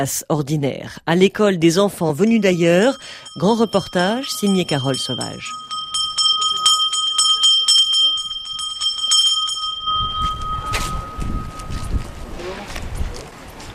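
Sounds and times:
speech: 0.0 - 5.6
school bell rung to call children in the morning: 2.3 - 12.2
rumbling wind buffeting the microphone: 8.0 - 13.7.

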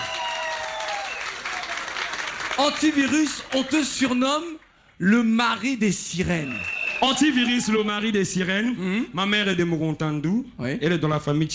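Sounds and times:
crowd applause at a talk event: 0.0 - 4.2, 6.2 - 8.2
speech: 2.6 - 11.5.

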